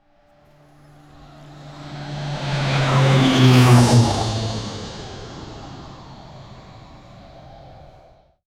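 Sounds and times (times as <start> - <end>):
airplane taking off: 0.0 - 8.4.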